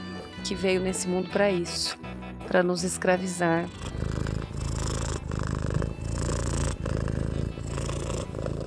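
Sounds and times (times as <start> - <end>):
speech: 0.4 - 4.0
cat purring: 3.2 - 8.6.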